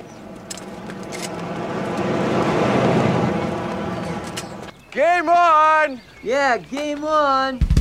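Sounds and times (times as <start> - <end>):
car driving past: 0.1 - 4.8
speech: 5.0 - 7.7.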